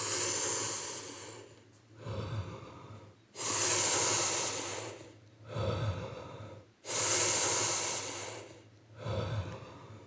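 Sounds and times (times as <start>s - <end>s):
slow loud inhales and exhales through the nose during a guided breathing exercise: 0.0s - 10.0s.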